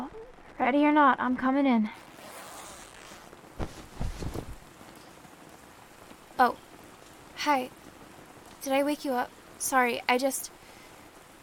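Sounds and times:
steady rain pattering: 0.0s - 11.4s
speech: 0.6s - 2.0s, 6.4s - 6.6s, 7.4s - 7.8s, 8.6s - 10.6s
rustling zipper-like scrapes: 1.9s - 4.6s.

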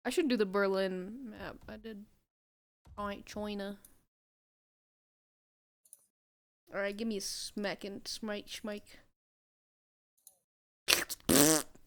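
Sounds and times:
speech: 0.0s - 2.2s, 2.9s - 3.9s, 6.7s - 9.0s
cartoonish fart sound effect from a kick move in a video game: 10.9s - 11.8s.

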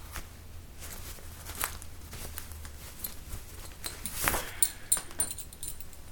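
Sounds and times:
leather belt rustling as it is unbuckled: 0.8s - 6.0s
metal belt buckle clinking: 3.0s - 6.0s.

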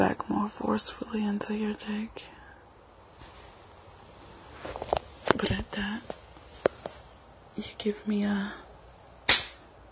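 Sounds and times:
speech: 0.0s - 2.4s, 5.4s - 6.2s, 7.6s - 8.6s
sharp slap of a hand against skin: 9.3s - 9.6s.

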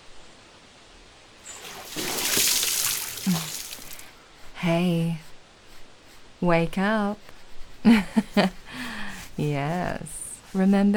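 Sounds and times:
water thrown and splashing onto a face: 1.5s - 4.1s
speech: 4.6s - 5.2s, 6.4s - 8.6s, 9.4s - 10.9s.

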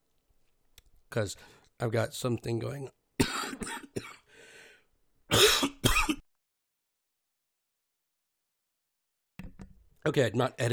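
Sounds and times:
speech: 1.1s - 3.0s, 10.1s - 10.7s
person clearing throat: 3.2s - 4.2s, 5.3s - 6.2s
person coughing: 3.2s - 4.3s, 5.3s - 6.2s.

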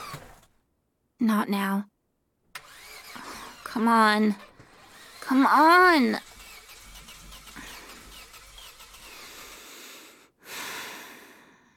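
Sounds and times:
car engine cranking without starting: 0.0s - 0.5s, 2.6s - 9.7s
speech: 1.2s - 1.9s, 3.7s - 4.5s, 5.2s - 6.3s.

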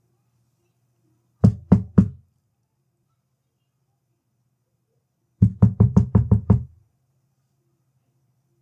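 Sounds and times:
firm knocking on a door: 1.4s - 2.2s, 5.4s - 6.8s.

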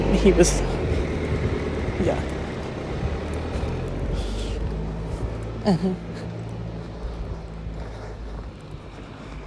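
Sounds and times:
car engine rumbling: 0.0s - 9.4s
speech: 0.1s - 0.8s, 5.6s - 6.2s.

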